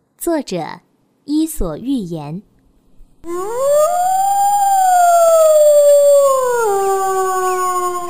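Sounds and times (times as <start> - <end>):
speech: 0.2 - 2.5, 3.2 - 4.3
wolf howling: 3.2 - 8.0.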